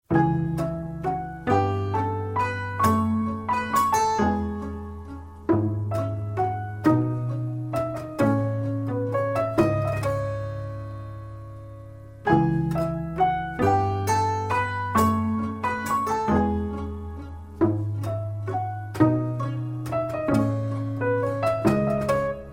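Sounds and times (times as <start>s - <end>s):
piano box: 0.0s - 22.5s.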